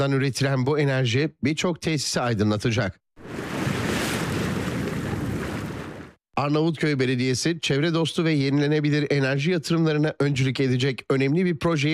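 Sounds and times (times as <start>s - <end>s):
speech: 0.0s - 3.0s, 6.4s - 11.9s
sea waves at a wave energy production plant in Karaburun harbour, Turkey: 3.2s - 6.2s.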